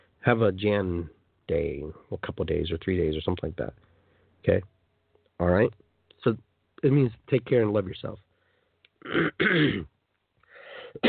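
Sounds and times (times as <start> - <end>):
speech: 0.2 - 4.8, 5.4 - 8.2, 9.0 - 9.9
man clearing throat: 9.0 - 10.0
man's harsh raspy coughs: 9.0 - 10.0, 10.7 - 11.0.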